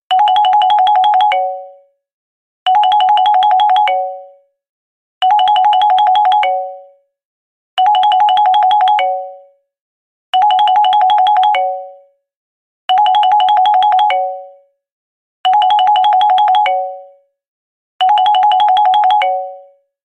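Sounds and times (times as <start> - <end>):
simple ringtone: 0.1 - 1.9, 2.7 - 4.5, 5.2 - 7.0, 7.8 - 9.6, 10.4 - 12.2, 12.9 - 14.8, 15.5 - 17.3, 18.0 - 19.9.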